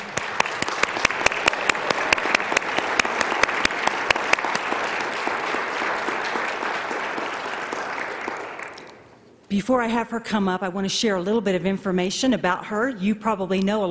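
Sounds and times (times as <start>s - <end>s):
room full of people clapping: 0.0s - 9.1s
speech: 9.6s - 13.8s.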